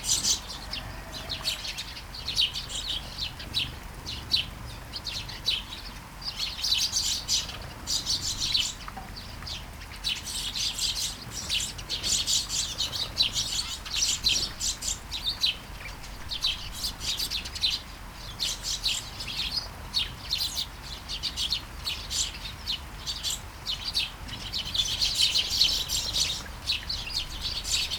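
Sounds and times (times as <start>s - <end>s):
sparrows chirping in a garden in Taastrup Denmark during a light shower: 0.0s - 27.9s.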